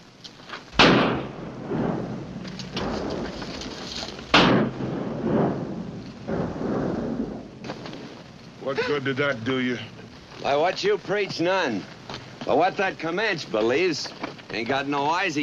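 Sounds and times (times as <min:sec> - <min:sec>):
gunshots fired into a dead man's body in a western film: 0:00.7 - 0:03.4, 0:04.2 - 0:07.9
speech: 0:08.7 - 0:15.4.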